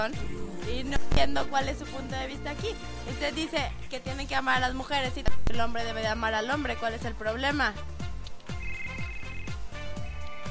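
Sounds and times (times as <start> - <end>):
speech: 0.0 - 7.9
telephone electronic ringtone for an incoming call: 8.6 - 9.5.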